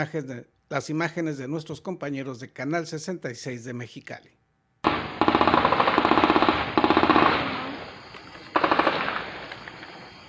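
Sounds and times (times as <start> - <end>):
speech: 0.0 - 4.4
heavy weapons automatic gunfire bursts: 4.8 - 7.9, 8.5 - 9.5.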